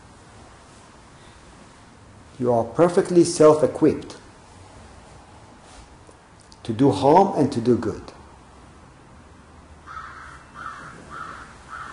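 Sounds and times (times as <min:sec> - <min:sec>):
speech: 0:02.4 - 0:04.2, 0:06.7 - 0:08.2
crow cawing: 0:09.8 - 0:11.9.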